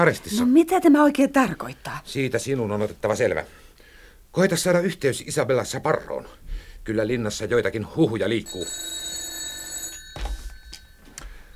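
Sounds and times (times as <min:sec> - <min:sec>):
speech: 0:00.0 - 0:03.6, 0:04.3 - 0:09.0
telephone bell ringing with a metallic trill: 0:08.3 - 0:11.5.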